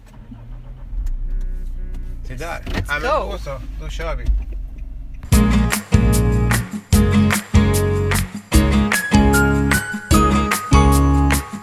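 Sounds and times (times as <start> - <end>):
car engine cranking and settling into a low rumble: 0.0 - 11.4
speech: 2.3 - 4.4.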